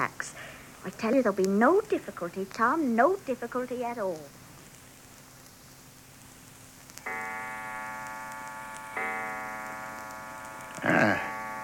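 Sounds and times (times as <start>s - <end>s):
speech: 0.0s - 4.4s
clock striking four o'clock: 9.0s - 9.6s.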